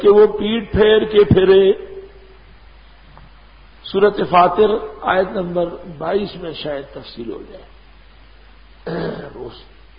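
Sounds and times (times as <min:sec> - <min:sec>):
speech: 0:00.0 - 0:01.9, 0:03.9 - 0:07.7, 0:08.9 - 0:09.7
throat clearing: 0:08.8 - 0:09.4.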